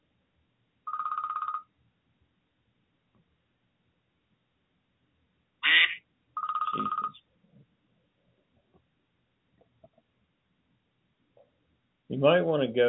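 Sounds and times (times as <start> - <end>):
phone alert buzzing trilling tone: 0.9 - 1.7, 6.4 - 7.2
speech: 12.1 - 12.8.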